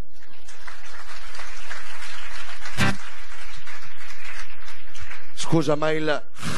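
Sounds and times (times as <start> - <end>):
audience applause: 0.1 - 5.6
sharp louder clap or thump: 0.7 - 5.3
speech: 5.5 - 6.5.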